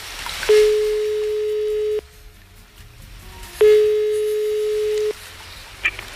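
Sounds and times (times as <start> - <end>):
telephone tone while redialing a call: 0.5 - 2.0, 3.6 - 5.2.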